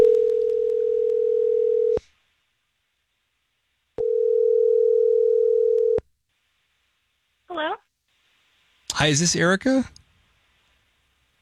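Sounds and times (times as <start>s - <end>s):
telephone ringback tone of an outgoing call: 0.0s - 2.0s, 4.0s - 6.0s
speech: 9.0s - 10.0s.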